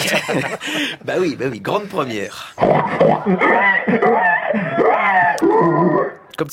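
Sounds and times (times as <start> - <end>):
laughter: 0.0 - 1.0
speech: 0.1 - 6.5
woman imitating a pig squeal at a pig-calling contest: 3.2 - 6.2.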